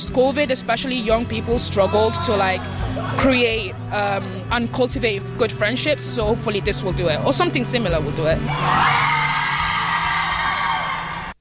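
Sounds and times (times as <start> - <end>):
speech: 0.0 - 9.2
crowd of women screaming and whooping: 8.5 - 11.4.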